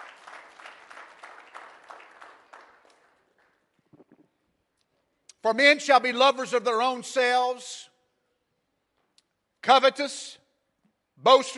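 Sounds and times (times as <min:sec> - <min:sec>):
audience clapping hands: 0:00.0 - 0:03.6
speech: 0:05.4 - 0:07.9, 0:09.7 - 0:10.4, 0:11.2 - 0:11.5.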